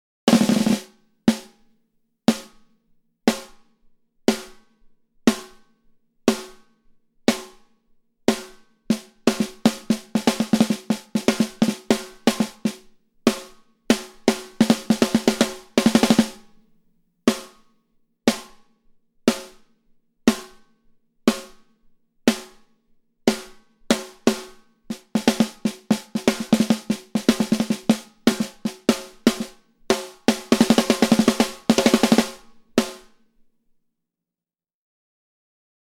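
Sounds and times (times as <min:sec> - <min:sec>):
snare drum with mattertone off: 0:00.3 - 0:01.6, 0:02.3 - 0:02.6, 0:03.3 - 0:03.6, 0:04.3 - 0:04.6, 0:05.3 - 0:05.7, 0:06.3 - 0:06.7, 0:07.3 - 0:07.6, 0:08.3 - 0:16.6, 0:17.3 - 0:17.6, 0:18.3 - 0:18.6, 0:19.3 - 0:19.7, 0:20.3 - 0:20.6, 0:21.3 - 0:21.6, 0:22.3 - 0:22.6, 0:23.3 - 0:33.2.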